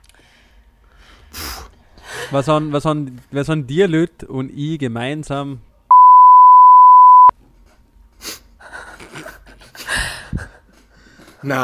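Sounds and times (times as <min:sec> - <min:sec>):
speech: 0:02.3 - 0:05.7, 0:11.4 - 0:11.6
censor bleep tone: 0:05.9 - 0:07.3.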